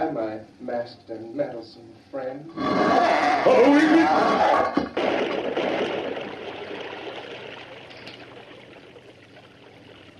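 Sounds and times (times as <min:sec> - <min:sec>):
speech: 0:00.4 - 0:05.4
water gushing and pouring into a well: 0:04.7 - 0:10.1.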